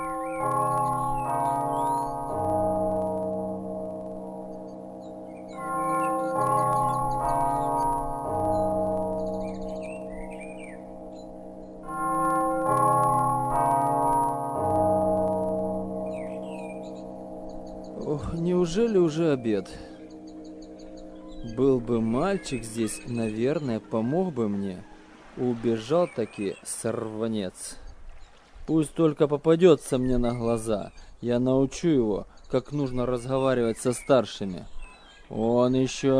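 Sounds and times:
bell ringing melodically: 0:00.0 - 0:25.6
birds chirping faintly: 0:00.0 - 0:36.1
speech: 0:18.8 - 0:19.9, 0:21.6 - 0:27.8, 0:28.7 - 0:34.7, 0:35.3 - 0:36.1.

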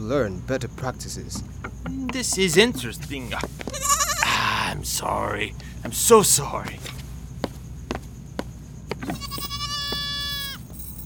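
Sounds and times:
speech: 0:00.1 - 0:04.0, 0:04.7 - 0:07.0
goat bleating: 0:03.7 - 0:04.4, 0:09.2 - 0:10.6.

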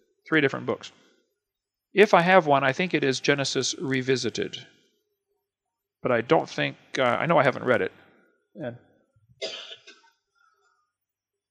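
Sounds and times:
speech: 0:00.3 - 0:01.1, 0:01.9 - 0:04.8, 0:06.0 - 0:08.0, 0:08.6 - 0:09.7
cough: 0:09.4 - 0:10.2.

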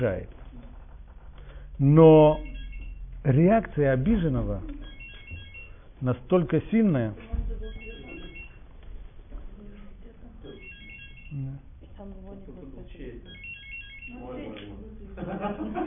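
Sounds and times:
speech: 0:00.0 - 0:00.4, 0:01.8 - 0:02.5, 0:03.2 - 0:04.9, 0:06.0 - 0:07.7, 0:11.3 - 0:13.3, 0:14.2 - 0:15.8
mobile phone ringing with a repeating electronic melody: 0:02.2 - 0:03.2, 0:04.7 - 0:05.9, 0:07.6 - 0:08.6, 0:10.5 - 0:11.6, 0:13.3 - 0:14.6
laughter: 0:15.1 - 0:15.8.

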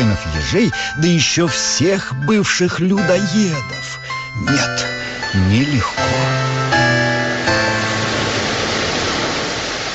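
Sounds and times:
speech: 0:00.2 - 0:06.6
stormy ocean waves crashing: 0:05.2 - 0:09.9.

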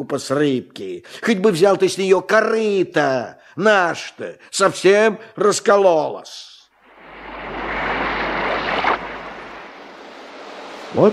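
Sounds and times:
speech: 0:00.0 - 0:06.5, 0:10.9 - 0:11.1
sea wave breaking: 0:06.8 - 0:11.1
slightly rough sea surf: 0:06.8 - 0:11.1.

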